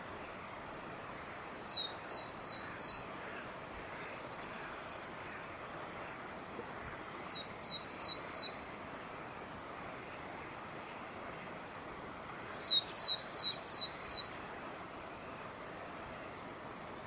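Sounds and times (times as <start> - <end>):
soft steady background noise: 0.0 - 17.0
Willow tit high clear downslurred whistles: 1.6 - 3.0, 7.2 - 8.6, 12.4 - 14.3.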